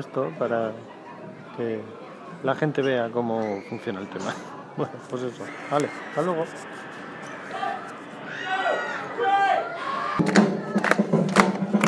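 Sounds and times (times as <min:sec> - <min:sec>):
speech: 0:00.0 - 0:01.0, 0:01.6 - 0:06.9
murmur of voices: 0:00.0 - 0:11.8
crowd clapping along to music for breakdancing in a street show: 0:10.2 - 0:11.8
music for men breakdancing in a street show: 0:10.2 - 0:11.8.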